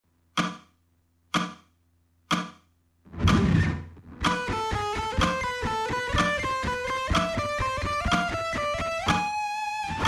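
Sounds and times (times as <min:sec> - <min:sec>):
slow alternate picking on guitar: 0:03.3 - 0:10.0.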